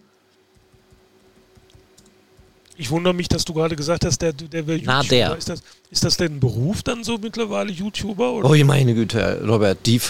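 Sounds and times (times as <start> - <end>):
steady hum: 0.0 - 10.0
computer keyboard typing while a name is searched: 0.5 - 2.6
speech: 2.8 - 10.0.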